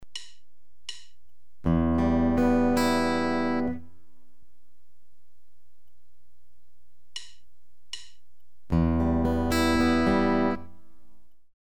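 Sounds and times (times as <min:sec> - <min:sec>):
guitar playing E minor arpeggios: 0:01.6 - 0:04.1, 0:08.7 - 0:11.1.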